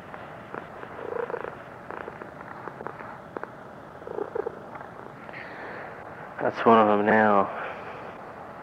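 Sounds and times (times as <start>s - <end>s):
cat purring: 0.0s - 5.4s
speech: 6.4s - 7.6s.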